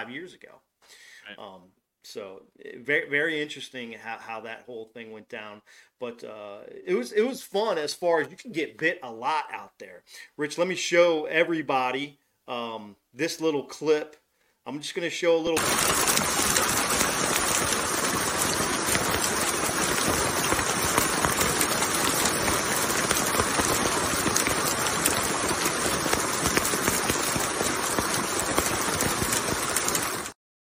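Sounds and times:
speech: 0:00.0 - 0:16.4
heavy rain and hail pounding down at Shasta: 0:15.6 - 0:30.4.

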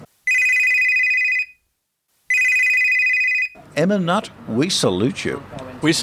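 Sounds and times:
telephone bell ringing: 0:00.3 - 0:01.6, 0:02.3 - 0:03.6
speech: 0:03.8 - 0:06.0.

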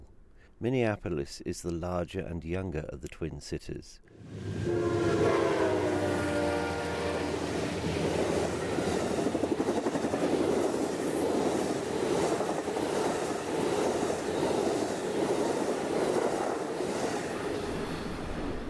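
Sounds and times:
speech: 0:00.6 - 0:04.9
passenger train horn blaring: 0:04.2 - 0:08.8
passenger train rumbling past along the Mississippi River: 0:04.2 - 0:18.6.

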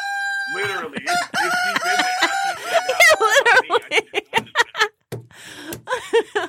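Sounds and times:
rooster crowing: 0:00.0 - 0:03.6
speech: 0:00.5 - 0:02.1, 0:02.8 - 0:04.2
laughter: 0:00.6 - 0:06.4.

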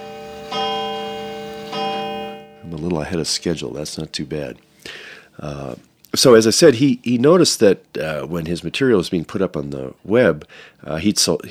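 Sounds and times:
clock chiming the hour: 0:00.0 - 0:04.2
speech: 0:02.7 - 0:11.5.

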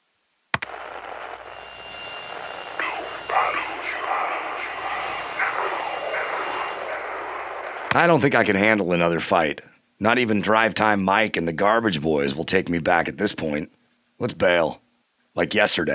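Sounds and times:
harsh distorted phone-line static: 0:00.6 - 0:08.6
faint garbled voice under phone static: 0:02.3 - 0:08.6
speech: 0:08.0 - 0:14.8, 0:15.4 - 0:15.9.

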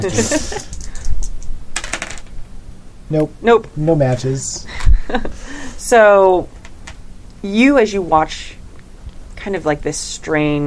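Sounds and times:
laughter: 0:00.0 - 0:00.8, 0:04.7 - 0:05.4
speech: 0:00.0 - 0:00.8, 0:03.1 - 0:06.6, 0:07.4 - 0:08.6, 0:09.4 - 0:10.6
pair of dice clattering across a hard tabletop: 0:01.8 - 0:02.3.

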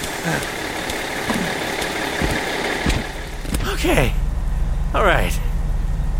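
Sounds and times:
large bus engine idling at a stop in the rain: 0:00.0 - 0:06.1
speech: 0:00.2 - 0:00.6, 0:03.8 - 0:04.2, 0:04.9 - 0:05.4
dull knocks and thumps: 0:00.9 - 0:03.7.

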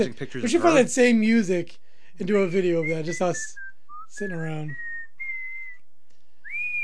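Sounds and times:
speech: 0:00.0 - 0:04.8
person whistling a tune: 0:02.8 - 0:05.8, 0:06.4 - 0:06.8.

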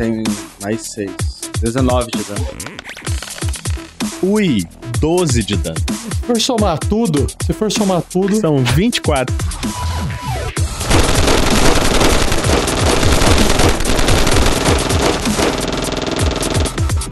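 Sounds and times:
speech: 0:00.0 - 0:03.1, 0:04.2 - 0:10.2
deep booming impacts: 0:10.7 - 0:16.8
rapid automatic gunfire in dense rattling volleys: 0:10.7 - 0:17.0.

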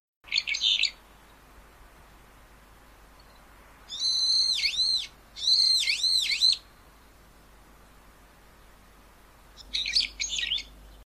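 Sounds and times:
faint hiss: 0:00.3 - 0:11.0
brown-eared bulbul calling in harsh squealing bursts: 0:03.9 - 0:06.6.

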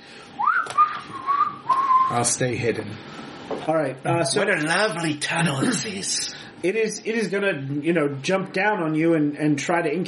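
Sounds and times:
person whistling a tune: 0:00.4 - 0:02.2
speech: 0:02.1 - 0:10.0.

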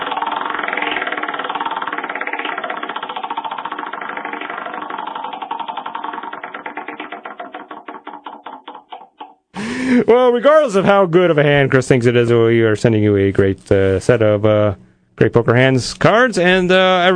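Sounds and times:
prize wheel spinning and clicking during a poker game segment: 0:00.0 - 0:09.4
speech: 0:09.9 - 0:17.1.

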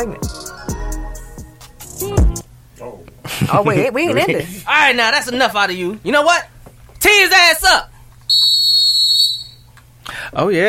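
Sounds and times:
speech: 0:00.0 - 0:00.4, 0:02.8 - 0:08.4, 0:10.3 - 0:10.6
loud sustained shrill whistle blast: 0:08.3 - 0:09.7.

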